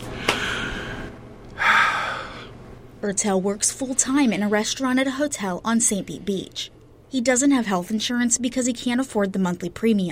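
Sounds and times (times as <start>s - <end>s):
60-year-old patient taking a deep breath for a stethoscope check: 0.0s - 2.6s
speech: 3.0s - 10.1s.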